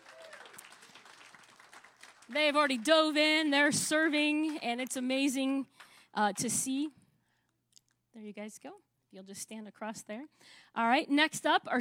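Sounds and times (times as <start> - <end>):
congregation applauding: 0.0 - 3.3
speech: 2.3 - 7.0, 8.2 - 11.8.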